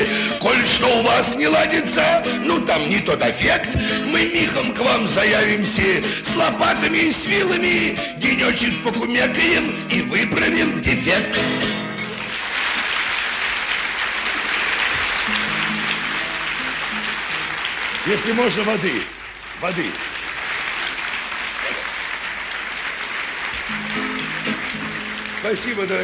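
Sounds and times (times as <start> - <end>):
speech: 0.6 - 11.8, 18.1 - 20.2, 25.4 - 26.0
sustained applause from a large audience: 11.5 - 26.0.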